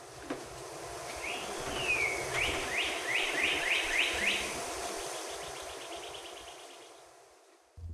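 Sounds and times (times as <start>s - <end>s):
steady hiss of background noise: 0.0s - 7.9s
male northern cardinal song played back from a phone recording: 1.2s - 4.6s.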